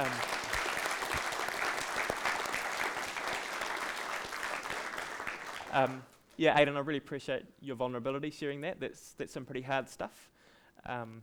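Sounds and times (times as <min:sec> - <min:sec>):
crowd clapping: 0:00.0 - 0:06.1
speech: 0:05.7 - 0:11.2.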